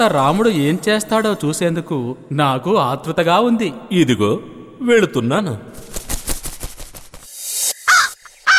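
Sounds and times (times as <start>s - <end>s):
speech: 0.0s - 6.0s
crow cawing: 7.9s - 8.5s.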